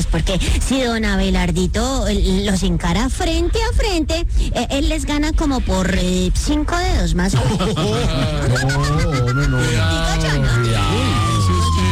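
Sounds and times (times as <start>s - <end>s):
speech: 0.1s - 11.3s
laughter: 7.3s - 11.9s
ambulance siren wailing in slow rising-and-falling sweep: 8.4s - 11.9s.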